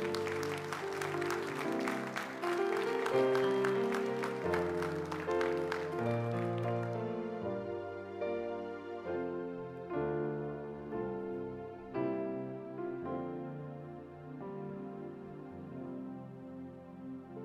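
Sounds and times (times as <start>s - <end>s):
congregation clapping hands: 0.0s - 7.7s
sustained keyboard chords: 0.0s - 17.4s.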